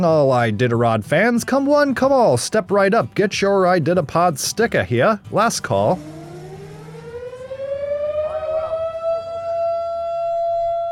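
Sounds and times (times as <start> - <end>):
speech: 0.0 - 6.2
civil defense siren wailing in Nome for sled dog mushers finishing a race: 5.9 - 10.8.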